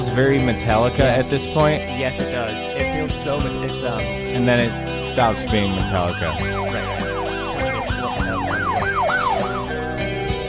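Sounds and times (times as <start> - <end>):
speech: 0.1 - 7.0
wailing emergency vehicle siren: 5.9 - 10.3.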